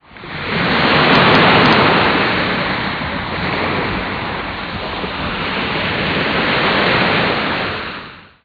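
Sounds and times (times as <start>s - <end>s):
thunderstorm: 0.3s - 8.0s.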